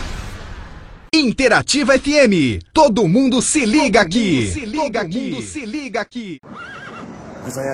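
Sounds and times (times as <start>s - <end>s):
speech: 1.1s - 6.8s, 7.5s - 7.7s
horse neighing: 6.5s - 7.1s.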